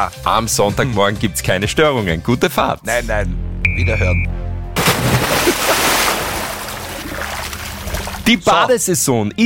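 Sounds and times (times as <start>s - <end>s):
speech: 0.0s - 4.4s, 8.3s - 9.4s
cannonball jump heavy splash into water: 4.8s - 8.3s.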